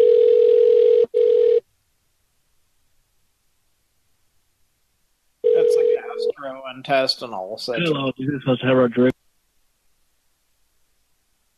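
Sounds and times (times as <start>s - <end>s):
telephone ringing tone during a call: 0.0s - 1.6s, 5.4s - 6.3s
speech: 6.8s - 9.1s.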